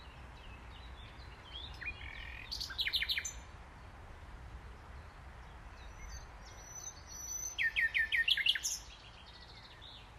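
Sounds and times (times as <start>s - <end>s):
Common nightingale singing high rapid repeated notes: 0.8s - 3.4s, 5.8s - 10.0s.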